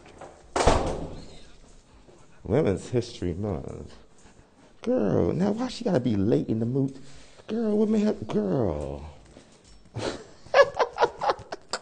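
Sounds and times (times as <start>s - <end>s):
door swinging shut with a solid thud: 0.5s - 1.4s
speech: 2.4s - 4.0s, 4.8s - 9.2s
laughter: 10.0s - 11.8s.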